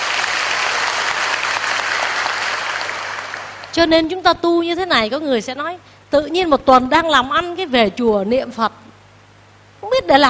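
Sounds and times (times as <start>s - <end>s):
crowd applauding: 0.0s - 3.7s
speech: 3.8s - 8.8s, 9.8s - 10.2s.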